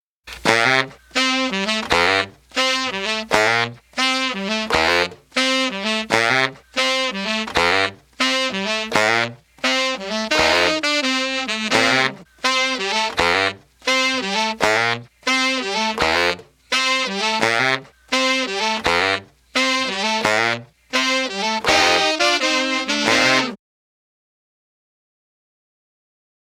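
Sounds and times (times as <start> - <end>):
dry saxophone: 0.3 - 23.6.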